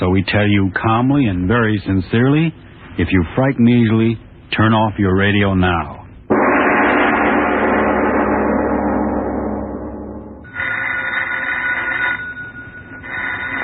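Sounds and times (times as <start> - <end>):
speech: 0.0 - 6.0
loud dense wash of sound: 6.3 - 10.5
telephone bell ringing: 10.5 - 13.6.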